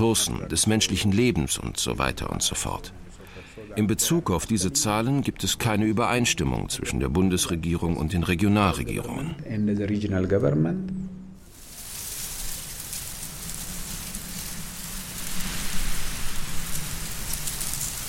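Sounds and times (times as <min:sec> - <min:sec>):
speech: 0:00.0 - 0:11.1
maize leaves rustling in strong wind: 0:11.4 - 0:18.0.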